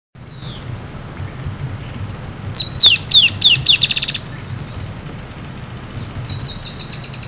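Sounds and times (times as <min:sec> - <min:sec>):
dusky-tailed antbird Drymophila malura singing: 0:00.2 - 0:00.7, 0:02.5 - 0:04.9, 0:06.0 - 0:07.2
low rumble: 0:00.2 - 0:07.2.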